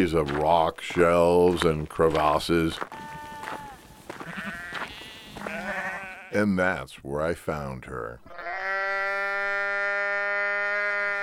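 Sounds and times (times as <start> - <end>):
speech: 0.0 - 3.1, 6.3 - 8.4
injured ewe bleating in distress on rock ledges of an island: 2.8 - 6.4, 8.3 - 11.2.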